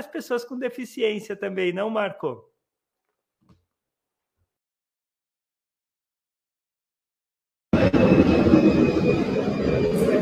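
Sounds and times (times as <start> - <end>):
speech: 0.0 - 2.5
airplane passing overhead beside Congonhas airport: 7.8 - 10.2.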